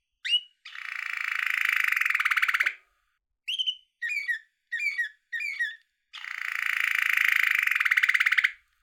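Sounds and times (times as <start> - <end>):
male yellow canary in a bird cage trilling and chirping: 0.2 - 2.8, 3.5 - 8.5.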